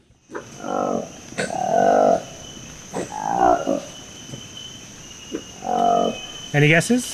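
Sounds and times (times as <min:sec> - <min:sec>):
steady high-pitched insect hum from the forest: 0:00.0 - 0:07.1
soft grunts of a newly discovered monkey species: 0:00.3 - 0:02.2, 0:02.9 - 0:03.8
newly discovered monkey species giving loud drawn-out hooting calls: 0:00.3 - 0:06.6
speech: 0:06.6 - 0:07.1.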